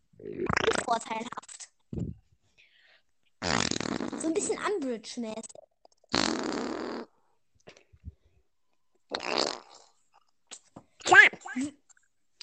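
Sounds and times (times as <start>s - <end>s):
loud buzzy fart sounds in place of speech: 0.2s - 0.9s, 3.4s - 4.4s, 6.0s - 7.2s, 9.1s - 10.0s
speech: 0.9s - 1.5s, 4.3s - 5.6s.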